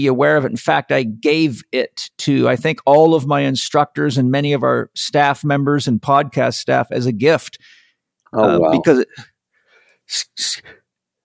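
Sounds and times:
speech: 0.0 - 9.3, 10.1 - 10.8
quiet breathy inhale: 9.5 - 10.0.

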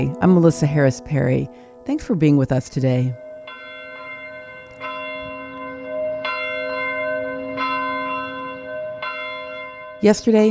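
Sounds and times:
speech: 0.0 - 3.2, 10.0 - 10.4
church bells tolling: 0.0 - 10.4.

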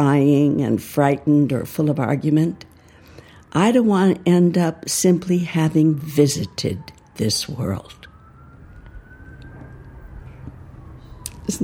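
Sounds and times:
speech: 0.0 - 2.7, 3.5 - 8.1, 11.5 - 11.6
faint sirens wailing: 0.0 - 11.6.

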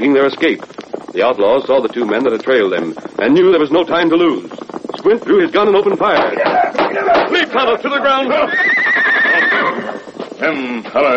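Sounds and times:
speech: 0.0 - 8.7, 10.4 - 11.1
quick galloping hoofbeats: 0.0 - 11.1
horse giving a loud wavering neigh: 7.9 - 10.6.

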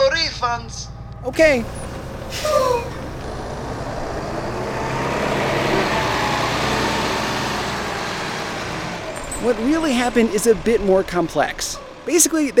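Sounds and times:
falling whine of a tour bus: 0.0 - 11.5
continuous road noise of a driving tour bus: 0.0 - 12.5
large tour bus engine rumbling as it drives off: 0.0 - 12.5
speech: 0.4 - 3.0, 9.4 - 12.5
tour bus air brakes hissing: 1.0 - 3.2.

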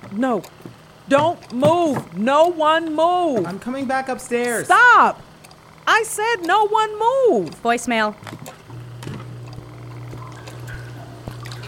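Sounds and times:
constant low mechanical hum: 0.0 - 11.6
speech: 0.1 - 5.2, 5.9 - 8.4
water dripping, possibly from a sump pump: 10.1 - 11.6.

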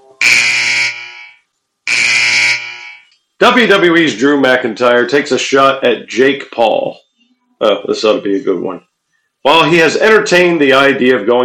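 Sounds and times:
harsh buzzer blasts: 0.2 - 3.1
speech: 3.4 - 7.0, 7.6 - 11.4.

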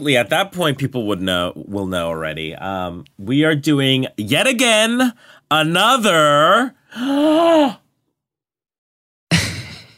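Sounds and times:
speech: 0.0 - 7.8
loud breathy drawn-out inhale: 5.2 - 5.5.

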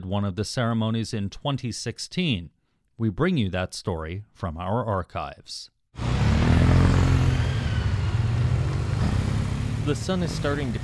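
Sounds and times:
speech: 0.1 - 6.1, 9.8 - 10.8
motorcycle engines idling and revving in a funeral home parking lot: 6.0 - 10.8.

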